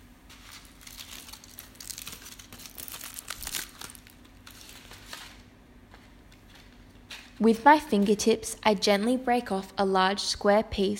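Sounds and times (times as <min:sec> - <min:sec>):
tin foil wrapping paper crinkling around a thin block of chocolate: 0:00.3 - 0:05.5
speech: 0:07.4 - 0:10.9.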